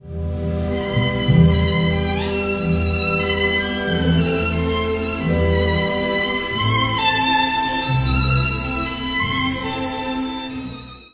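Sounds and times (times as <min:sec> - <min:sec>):
pretty violin solo with orchestra: 0:00.4 - 0:11.1.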